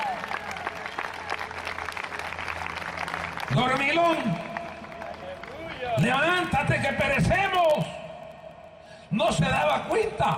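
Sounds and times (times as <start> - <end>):
audience clapping: 0.0 - 6.6
speech: 3.5 - 4.5, 6.0 - 7.9, 9.2 - 10.3.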